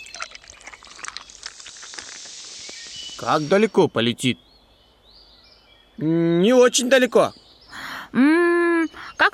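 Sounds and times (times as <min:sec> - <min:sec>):
water being poured into a water rocket: 0:00.0 - 0:03.9
speech: 0:03.2 - 0:04.5, 0:06.0 - 0:07.4, 0:08.1 - 0:09.3.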